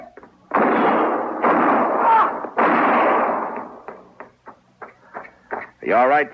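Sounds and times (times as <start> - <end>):
sharp gunshots in a shootout: 0.5 - 4.0
speech: 5.9 - 6.3.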